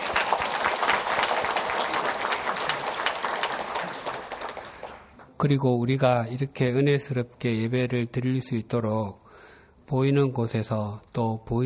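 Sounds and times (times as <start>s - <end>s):
congregation applauding with many hands clapping: 0.0s - 5.3s
speech: 5.4s - 9.2s, 9.9s - 11.6s.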